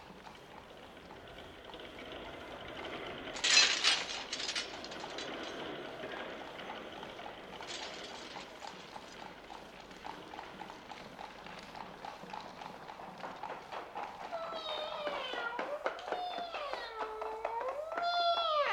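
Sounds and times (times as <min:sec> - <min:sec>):
horse-drawn carriage hooves clip-clopping: 0:00.0 - 0:18.7
drawbridge creaking rumble: 0:00.7 - 0:18.7
heavy drawbridge mechanism grinding and rattling: 0:02.4 - 0:09.2
drawbridge metal chains clinking: 0:03.4 - 0:06.3, 0:07.5 - 0:09.2.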